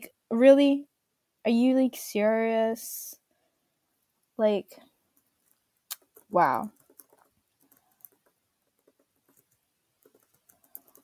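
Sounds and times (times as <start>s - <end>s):
speech: 0.3s - 3.2s, 4.4s - 4.9s, 6.3s - 6.8s
clicking of keys on a computer keyboard: 5.2s - 11.0s.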